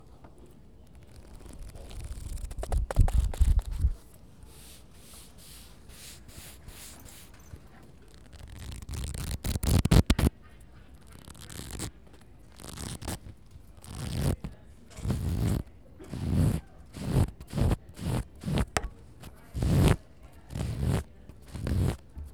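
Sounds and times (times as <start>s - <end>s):
book page turning with friction: 0.9s - 4.8s, 8.0s - 10.3s, 11.0s - 11.9s, 12.5s - 20.0s, 20.5s - 22.3s.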